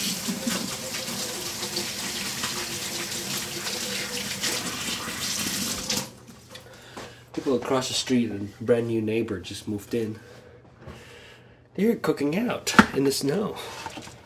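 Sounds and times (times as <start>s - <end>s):
water running from a tap while someone washes their hair: 0.0s - 6.4s
speech: 7.4s - 10.3s, 11.8s - 13.8s.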